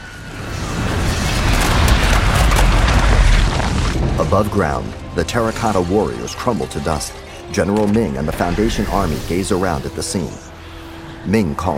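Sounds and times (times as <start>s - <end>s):
deep roaring explosion of a blazing body: 0.0s - 5.6s
speech: 4.3s - 10.5s, 11.2s - 11.7s.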